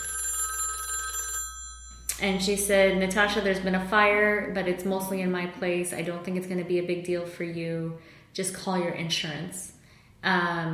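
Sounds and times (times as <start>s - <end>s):
telephone ringing with an electronic warble: 0.0s - 2.7s
speech: 2.2s - 10.7s.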